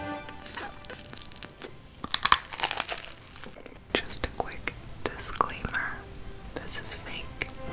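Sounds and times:
soft whispering in an ASMR recording: 0.3 - 1.8, 3.4 - 7.7
plastic bags crinkling and rustling: 0.4 - 3.8.

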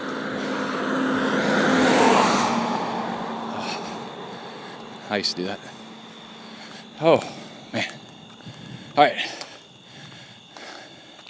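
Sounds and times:
big truck engine and road roar passing: 0.0 - 9.0
steady tonal hum: 0.0 - 10.5
speech: 5.1 - 5.8, 7.0 - 8.0, 9.0 - 9.4.

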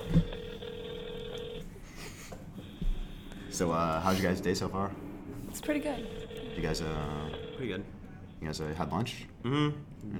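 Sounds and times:
outgoing phone ring tone over a speakerphone: 0.0 - 1.7, 6.0 - 7.9
speech: 3.6 - 10.1.

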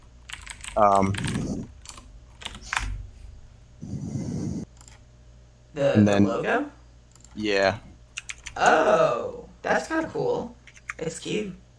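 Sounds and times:
computer keyboard typing while looking something up online: 0.0 - 3.0, 4.7 - 5.0, 7.1 - 7.4, 8.1 - 8.7, 10.6 - 11.0
speech: 0.8 - 1.5, 5.8 - 6.8, 7.4 - 7.9, 8.6 - 11.6.

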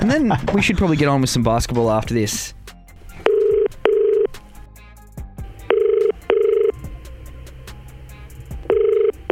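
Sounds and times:
speech: 0.0 - 2.6
phone call double-burst ringback tone: 3.2 - 4.4, 5.6 - 7.0, 8.6 - 9.3.

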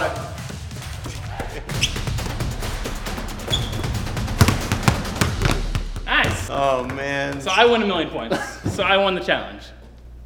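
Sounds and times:
five basketballs bouncing while being juggled: 1.1 - 9.0
speech: 6.6 - 9.8.

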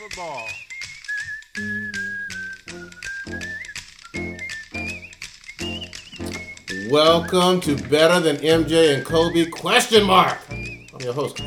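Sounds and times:
clacking percussive rhythmic backing: 0.0 - 11.4
man whistling a lilting tune: 0.0 - 11.4
speech: 0.1 - 0.7, 1.6 - 1.8, 6.9 - 11.4.

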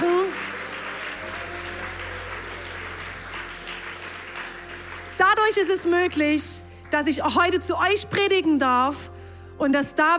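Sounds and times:
audience applause: 0.0 - 5.6
speech: 5.3 - 10.1.

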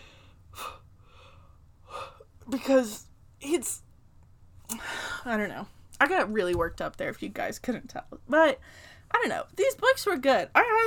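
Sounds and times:
deep breath taken to calm down: 0.0 - 2.2
speech: 2.5 - 3.8, 4.7 - 10.8.

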